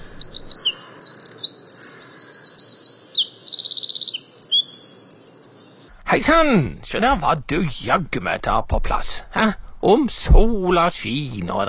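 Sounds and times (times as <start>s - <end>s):
birdsong: 0.0s - 6.0s
faint low hiss: 5.9s - 11.6s
speech: 6.1s - 11.6s.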